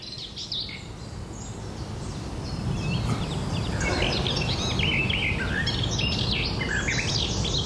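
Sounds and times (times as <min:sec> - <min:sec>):
garden warbler song: 0:00.0 - 0:07.6
low steady hiss: 0:00.0 - 0:07.6.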